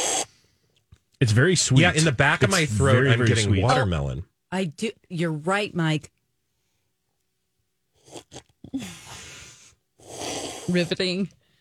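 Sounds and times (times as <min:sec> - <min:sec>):
loud slurping of air and liquid while tasting: 0:00.0 - 0:00.3, 0:10.0 - 0:11.0
speech: 0:01.2 - 0:06.2, 0:08.1 - 0:09.2, 0:10.7 - 0:11.4
short wet mouth sounds: 0:08.0 - 0:08.8.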